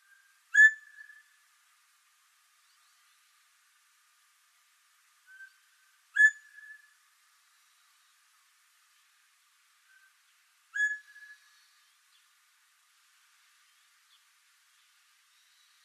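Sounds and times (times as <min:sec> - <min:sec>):
Northern Bobwhite calling: 0:00.5 - 0:01.2, 0:06.1 - 0:06.8, 0:10.7 - 0:11.4.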